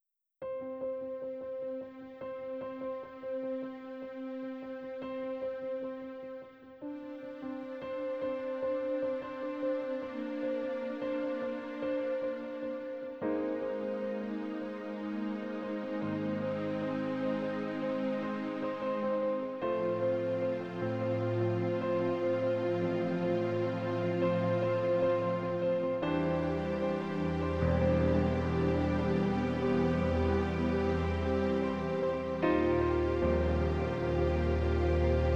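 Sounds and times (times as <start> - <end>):
strings pad on a Yamaha NP-15 digital piano: 0.4 - 35.3.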